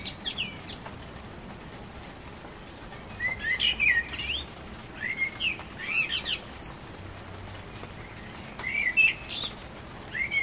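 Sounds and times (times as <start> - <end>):
common blackbird singing: 0.0 - 0.8, 3.1 - 6.8, 8.1 - 10.4.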